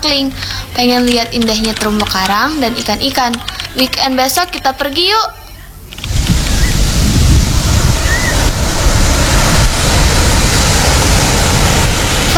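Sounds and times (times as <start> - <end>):
speech: 0.0 - 5.4
ocean surf washing onto a beach: 6.0 - 12.3.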